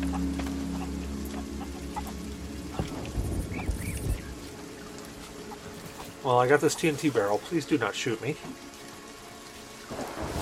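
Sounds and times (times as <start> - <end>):
steady rain: 0.0 - 10.4
thunder rumbling from a storm: 2.5 - 4.6, 9.9 - 10.4
speech: 6.2 - 8.7.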